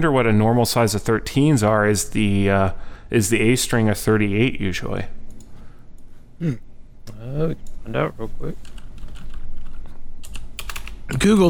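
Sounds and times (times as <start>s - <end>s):
speech: 0.0s - 5.2s, 6.4s - 8.7s, 11.1s - 11.4s
clacking of loud computer keyboards: 8.6s - 11.4s.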